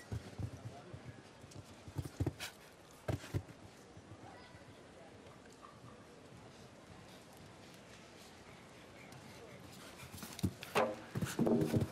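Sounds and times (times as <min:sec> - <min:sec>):
horse hoofbeats thudding across the ground: 0:00.0 - 0:03.6, 0:10.1 - 0:11.9
horse galloping strides: 0:00.0 - 0:03.9, 0:07.0 - 0:11.9.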